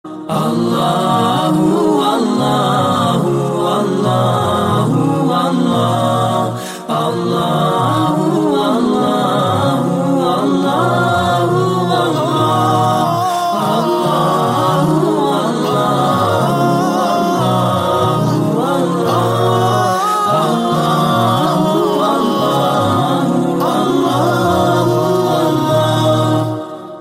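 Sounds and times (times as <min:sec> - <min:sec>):
Islamic chanting ringtone: 0:00.3 - 0:26.9.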